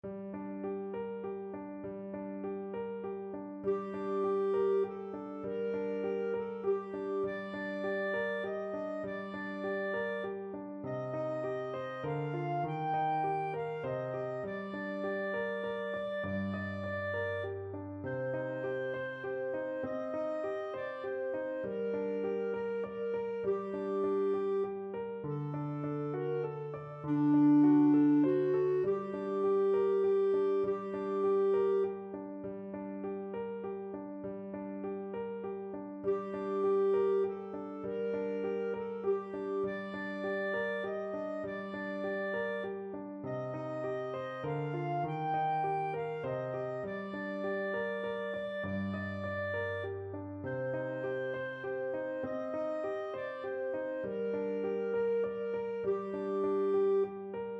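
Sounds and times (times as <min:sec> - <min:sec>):
clarinet: 0:00.0 - 0:57.5.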